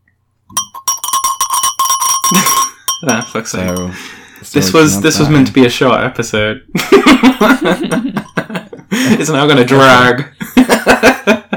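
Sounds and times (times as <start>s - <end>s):
small hand bell ringing: 0.5s - 4.2s
speech: 2.3s - 8.2s, 9.2s - 11.4s
laughter: 6.7s - 11.5s.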